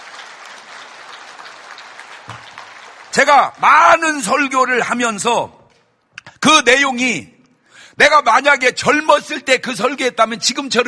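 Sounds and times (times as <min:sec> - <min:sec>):
sustained applause from a large audience: 0:00.0 - 0:03.5
speech: 0:03.2 - 0:05.6, 0:06.4 - 0:07.3, 0:08.0 - 0:10.8.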